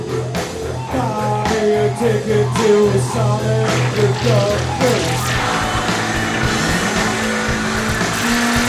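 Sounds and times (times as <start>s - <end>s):
cars with revving engines: 0.2s - 8.6s
speech: 2.0s - 5.4s
high whining tone: 2.0s - 8.6s.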